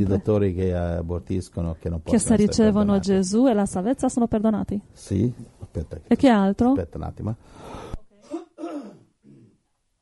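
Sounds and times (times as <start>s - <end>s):
speech: 0.0s - 7.9s
person clearing throat: 8.2s - 9.6s
person coughing: 8.2s - 9.6s.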